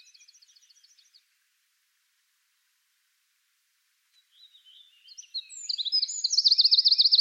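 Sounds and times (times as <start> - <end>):
Eurasian wren Troglodytes troglodytes giving a high rapid trill: 5.2 - 7.1.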